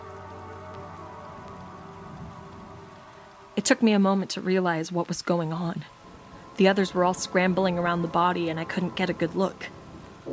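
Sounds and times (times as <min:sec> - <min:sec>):
steady rain pattering against a window: 0:00.0 - 0:10.3
speech: 0:03.6 - 0:06.0, 0:06.6 - 0:10.3.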